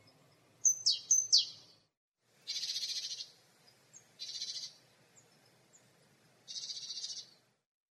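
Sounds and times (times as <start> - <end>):
great tit Parus major calls: 0.6 - 1.8, 2.5 - 3.4, 4.2 - 5.3, 6.5 - 7.4.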